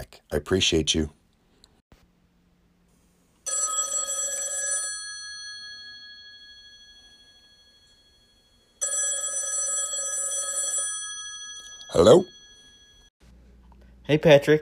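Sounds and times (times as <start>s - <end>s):
speech: 0.3s - 1.2s, 12.0s - 12.4s, 14.1s - 14.6s
old-style telephone bell ringing: 3.4s - 13.1s.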